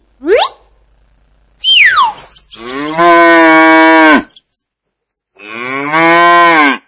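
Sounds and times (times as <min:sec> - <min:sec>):
cow mooing: 0:02.5 - 0:04.3, 0:05.4 - 0:06.8.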